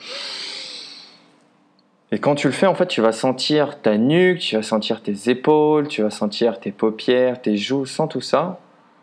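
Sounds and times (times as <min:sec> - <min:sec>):
long deep breath drawn in through the nose: 0:00.0 - 0:01.3
speech: 0:02.1 - 0:08.6.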